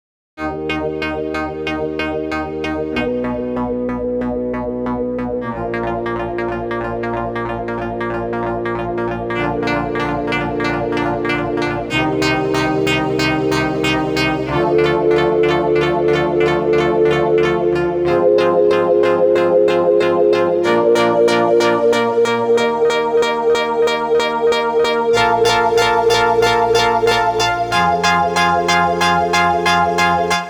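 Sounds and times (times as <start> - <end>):
basic saw wave synth sequence: 0.4 - 30.4.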